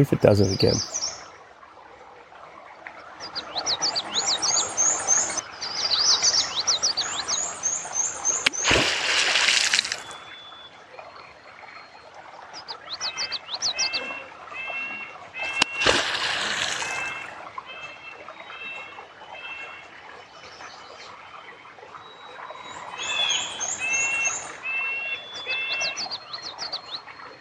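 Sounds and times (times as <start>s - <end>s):
speech: 0.0s - 1.0s
birdsong chirps and trills at a beaver pond: 0.0s - 1.8s, 2.4s - 27.3s
beaver tail smack on water at a beaver dam: 8.4s - 10.1s, 15.5s - 17.2s.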